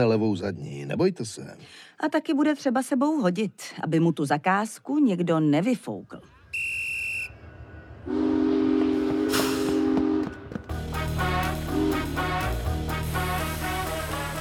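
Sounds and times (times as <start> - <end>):
speech: 0.0 - 6.7
train whistle: 6.5 - 14.3
moving train rumbling and clattering along the rails: 7.5 - 12.6.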